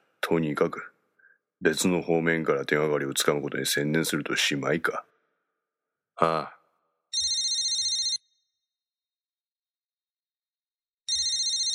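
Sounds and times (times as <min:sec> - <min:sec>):
speech: 0:00.2 - 0:01.0, 0:01.6 - 0:05.1, 0:06.2 - 0:06.6
mobile phone ringing with warbling electronic tone: 0:07.1 - 0:08.6, 0:11.1 - 0:11.7.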